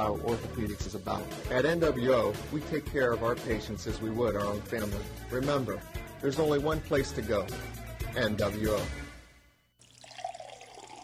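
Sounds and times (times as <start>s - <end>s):
speech: 0.0s - 9.0s
water running from a tap filling a jug: 9.8s - 11.0s.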